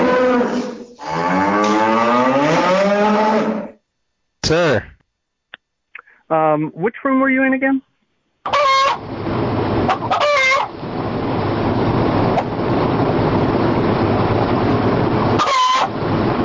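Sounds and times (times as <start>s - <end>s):
chicken squawking and crowing: 0.0s - 3.7s, 8.4s - 9.1s, 9.8s - 10.8s, 15.3s - 16.0s
speech: 6.3s - 8.6s
constant rushing noise: 9.0s - 16.4s.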